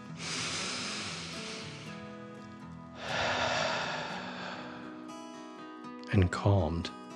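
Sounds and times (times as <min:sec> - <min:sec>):
deep breath in and out: 0:00.0 - 0:02.2, 0:03.0 - 0:05.4
speech: 0:06.1 - 0:07.0.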